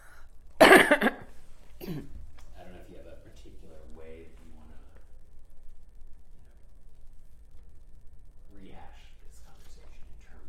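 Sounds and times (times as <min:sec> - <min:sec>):
person coughing: 0:00.6 - 0:02.2.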